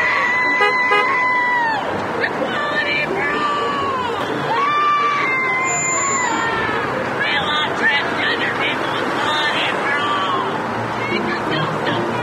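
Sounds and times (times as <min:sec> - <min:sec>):
large protest crowd screaming and shouting: 0:00.0 - 0:12.2.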